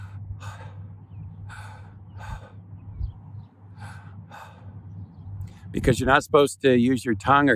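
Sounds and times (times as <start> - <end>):
breathy exhalations imitating the Hebrew name of God: 0.0 - 2.7, 3.7 - 5.7
low steady hum: 0.0 - 7.5
speech: 5.7 - 7.5.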